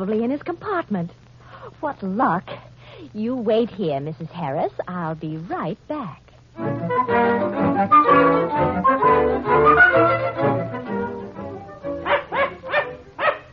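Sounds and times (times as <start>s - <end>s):
speech: 0.0s - 10.3s
dog barking and yipping: 12.0s - 13.5s.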